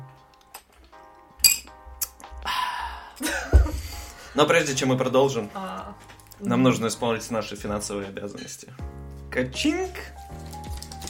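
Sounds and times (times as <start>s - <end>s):
glasses of children's champagne clinking together: 1.4s - 1.8s
speech: 4.4s - 10.2s.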